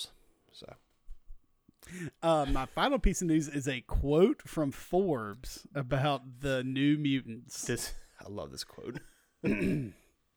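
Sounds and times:
speech: 0.0s - 0.8s, 1.8s - 10.0s
voiced throat clearing: 9.4s - 10.1s.

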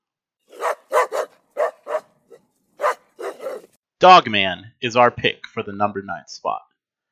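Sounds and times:
dog barking sharp woofs: 0.5s - 3.7s
speech: 4.0s - 6.7s.

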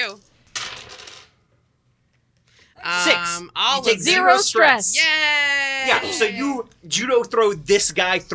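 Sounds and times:
dice clattering across a hard tabletop: 0.4s - 1.4s
speech: 2.8s - 8.3s.

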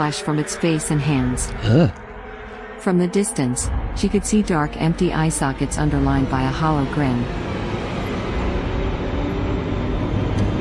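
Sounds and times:
speech: 0.0s - 2.0s, 2.8s - 7.6s
train rumbling along the rails: 3.9s - 10.5s.

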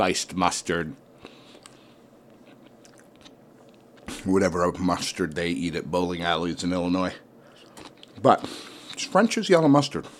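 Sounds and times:
speech: 0.0s - 1.1s, 4.2s - 7.2s, 8.2s - 10.1s
person chewing while eating: 1.2s - 4.2s, 7.5s - 9.0s.

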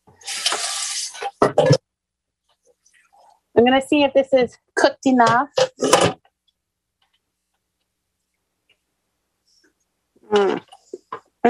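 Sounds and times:
tap water running over pasta in colander: 0.0s - 1.4s
speech: 3.6s - 6.2s.

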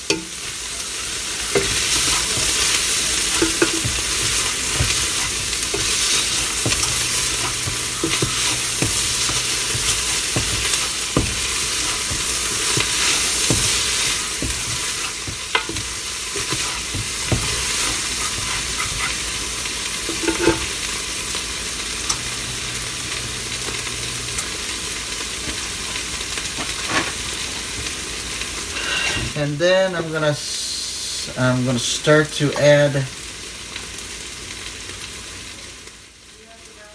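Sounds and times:
meat and vegetables sizzling in a pan: 0.0s - 36.9s
stirring utensil scraping and clicking in a pan: 0.1s - 20.7s
speech: 29.6s - 30.5s, 31.4s - 33.2s.

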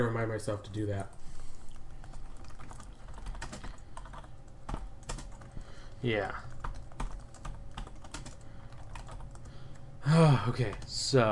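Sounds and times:
speech: 0.0s - 1.2s, 6.0s - 6.5s, 10.0s - 11.2s
low hum: 0.0s - 11.2s
rapid typing on a computer keyboard: 1.7s - 5.6s, 6.4s - 9.8s, 10.6s - 11.0s.

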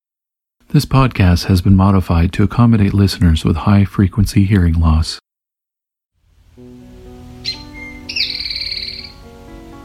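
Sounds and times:
speech: 0.7s - 5.2s
soft sustained musical tones: 6.3s - 9.8s
Eastern Towhee singing: 6.6s - 9.8s.

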